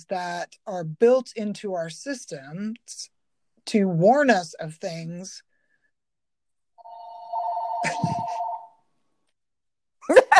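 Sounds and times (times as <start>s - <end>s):
speech: 0.0s - 3.1s, 3.7s - 5.4s
telephone ringing with electronic trill: 6.8s - 8.8s.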